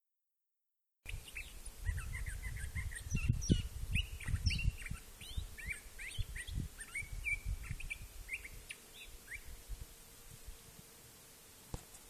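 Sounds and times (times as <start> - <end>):
songbird singing chirps and whistles in Sonoran Desert ironwood forest: 1.1 - 9.5.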